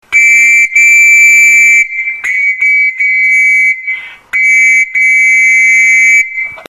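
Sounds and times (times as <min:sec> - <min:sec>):
scout master whistle blowing: 0:00.1 - 0:06.6.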